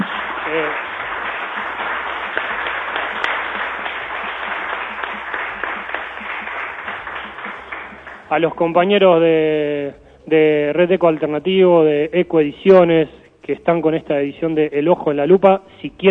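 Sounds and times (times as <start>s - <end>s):
audience applause: 0.0s - 8.3s
speech: 0.5s - 0.9s, 8.3s - 16.0s.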